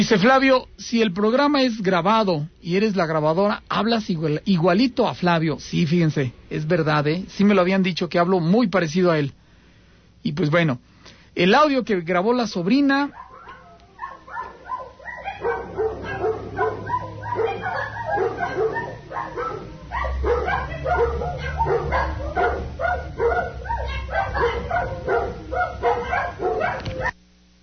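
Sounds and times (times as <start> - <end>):
speech: 0.0 - 9.4, 10.2 - 13.2
dogs barking in a recording played back: 12.8 - 27.2.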